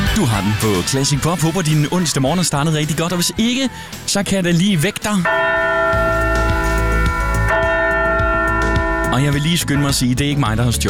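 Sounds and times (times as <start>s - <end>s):
laughter: 0.1s - 5.2s
speech: 0.2s - 6.4s, 9.1s - 10.8s
heavy church bell ringing: 5.2s - 10.2s.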